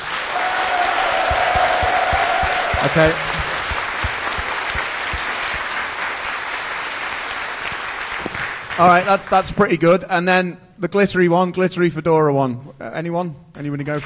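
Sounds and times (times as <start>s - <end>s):
crowd clapping: 0.0s - 9.6s
speech: 2.8s - 3.4s, 8.8s - 14.0s.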